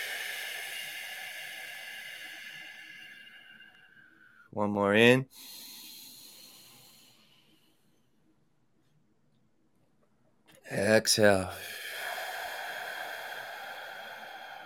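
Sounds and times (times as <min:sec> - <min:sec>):
person pushing out a big breath in a long exhale during a guided breathing exercise: 0:00.0 - 0:04.5, 0:05.3 - 0:07.6, 0:11.5 - 0:14.6
speech: 0:04.5 - 0:05.6, 0:10.7 - 0:11.8.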